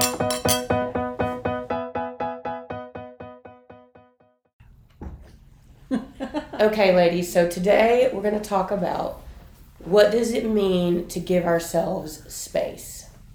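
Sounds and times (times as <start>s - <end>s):
glasses clinking in a toast: 0.0s - 0.8s
speech: 6.6s - 9.2s, 9.9s - 13.0s.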